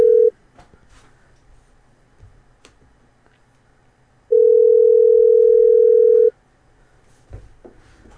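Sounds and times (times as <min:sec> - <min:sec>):
electronic telephone tone of an incoming call: 0:00.0 - 0:00.3, 0:04.3 - 0:06.3.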